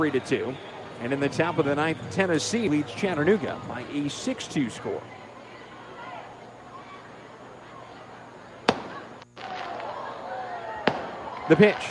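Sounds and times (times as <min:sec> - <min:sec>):
speech: 0:00.0 - 0:05.2, 0:11.5 - 0:11.8
crowd murmur and indistinct voices at a baseball game: 0:00.0 - 0:11.8
fireworks going off: 0:08.6 - 0:11.8
single sharp firework bang with tail: 0:08.7 - 0:09.7, 0:10.8 - 0:11.3.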